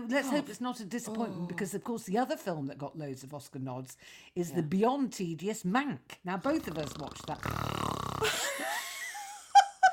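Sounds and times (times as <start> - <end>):
speech: 0.1 - 8.5
two people imitating snoring with snorts and wheezy exhales: 6.4 - 8.4.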